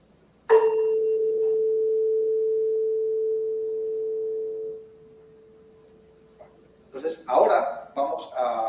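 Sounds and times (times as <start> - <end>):
faint noise: 0.0 - 8.6
440 Hz tuning fork struck with a metallic tap: 0.5 - 6.4.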